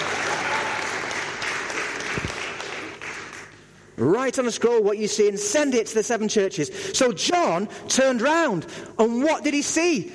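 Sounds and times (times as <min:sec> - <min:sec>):
audience applause: 0:00.0 - 0:03.6
speech: 0:04.0 - 0:10.1.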